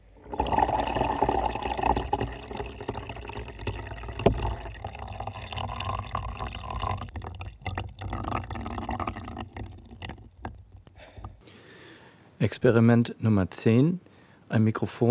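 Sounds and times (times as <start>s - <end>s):
water pouring into a container: 0.0s - 11.4s
speech: 12.4s - 15.0s.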